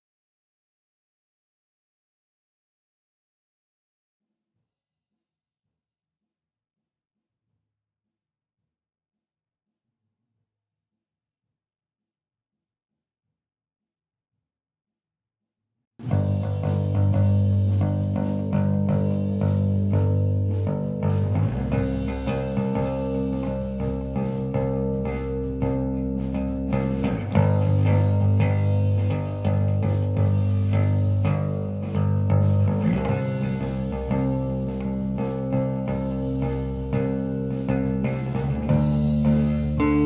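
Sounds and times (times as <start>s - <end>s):
bass recorded with SM57 microphone: 16.0s - 40.0s.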